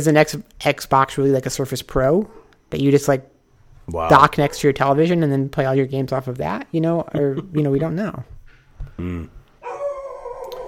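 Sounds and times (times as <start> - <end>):
speech: 0.0 - 3.3, 3.9 - 9.4
dog barking: 4.4 - 4.8, 9.6 - 10.6.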